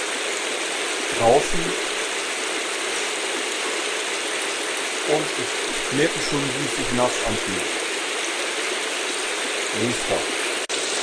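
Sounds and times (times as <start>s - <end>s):
heavy rain pouring down outdoors: 0.0s - 11.0s
speech: 1.2s - 1.9s, 5.1s - 7.8s, 9.7s - 10.4s.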